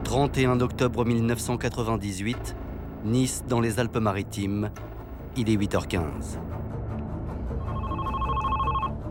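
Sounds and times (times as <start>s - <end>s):
speech: 0.1s - 6.6s
electronic telephone ringing at a central police station: 7.6s - 9.0s.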